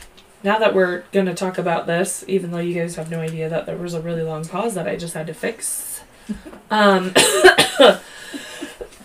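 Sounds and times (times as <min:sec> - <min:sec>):
speech: 0:00.4 - 0:08.5
quick throaty coughs with rough voiced rasp: 0:07.2 - 0:09.0.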